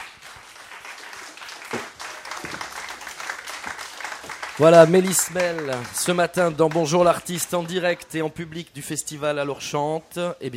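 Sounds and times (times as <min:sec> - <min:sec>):
festival audience applauding a singer: 0:00.0 - 0:08.0
speech: 0:04.6 - 0:10.5.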